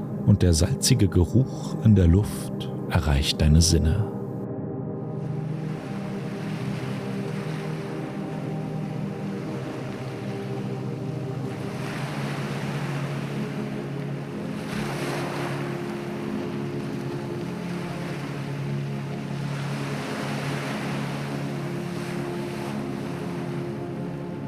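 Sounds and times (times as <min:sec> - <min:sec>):
speech: 0:00.2 - 0:04.2
gentle ocean waves washing onto a beach: 0:05.6 - 0:24.3.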